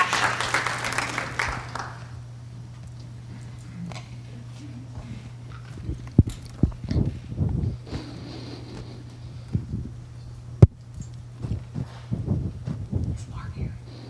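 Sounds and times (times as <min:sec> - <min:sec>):
audience applause: 0:00.0 - 0:02.2
steady low hum: 0:00.0 - 0:14.0.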